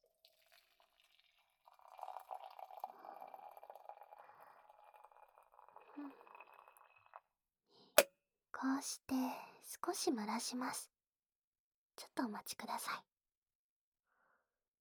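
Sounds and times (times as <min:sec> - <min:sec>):
hot water being poured for tea: 0:00.1 - 0:07.2
speech: 0:08.6 - 0:10.9, 0:12.1 - 0:13.1.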